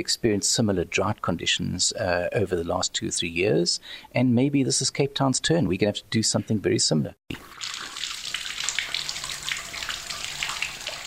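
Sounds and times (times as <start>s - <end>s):
speech: 0.0s - 7.8s
water running from a tap: 7.3s - 11.0s.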